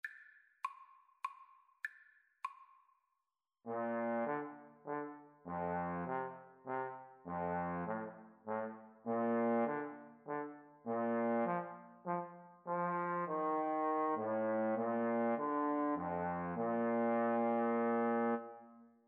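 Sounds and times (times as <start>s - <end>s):
trombone duet playing a birthday song: 3.7s - 18.5s.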